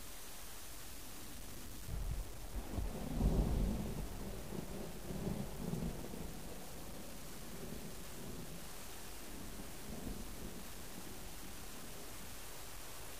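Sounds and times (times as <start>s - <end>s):
steady rain: 0.0s - 13.1s
low rolling rumble of thunder: 1.9s - 8.7s, 9.3s - 12.0s.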